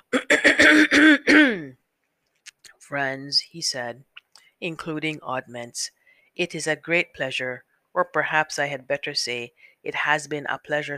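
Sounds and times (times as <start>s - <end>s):
person imitating a storybook character's impressive cough: 0.1s - 1.8s
speech: 2.9s - 10.9s.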